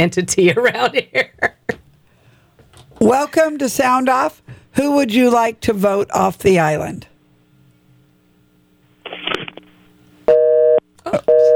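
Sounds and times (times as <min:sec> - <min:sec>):
speech: 0:00.0 - 0:01.6, 0:03.0 - 0:07.1
telephone busy tone after a caller's line dropped: 0:10.3 - 0:11.5.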